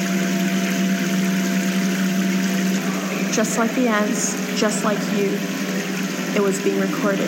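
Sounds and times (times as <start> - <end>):
constant hum: 0.0 - 7.2
running water pouring into a bucket: 0.0 - 7.2
speech: 3.4 - 5.6, 6.3 - 7.2.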